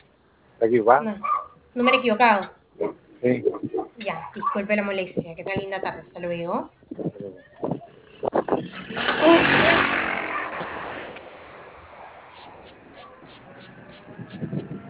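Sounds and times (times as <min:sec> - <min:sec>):
speech: 0:00.6 - 0:07.5, 0:09.0 - 0:10.0
motorcycle engine revving: 0:07.9 - 0:14.8.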